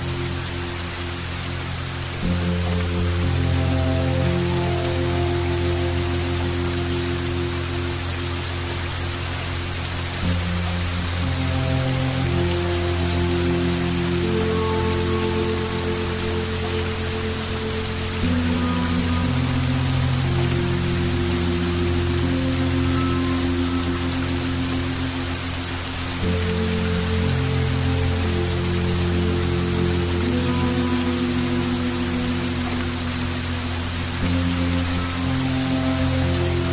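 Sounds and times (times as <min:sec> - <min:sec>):
faint higher notes: 0:00.0 - 0:36.7
heavy rain hiss: 0:00.0 - 0:36.7
low sustained meditation tones holding long chords: 0:00.0 - 0:36.7.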